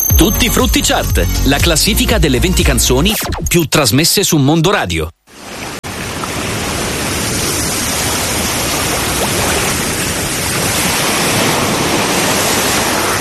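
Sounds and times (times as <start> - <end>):
speech: 0.2 - 5.2
sea waves roaring: 5.3 - 13.1.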